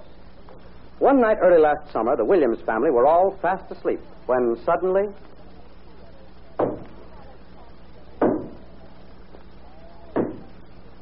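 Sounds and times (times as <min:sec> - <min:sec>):
quiet hum: 0:00.0 - 0:11.0
speech: 0:01.0 - 0:05.4
heavy knocking on a door: 0:08.2 - 0:08.6, 0:10.2 - 0:10.5.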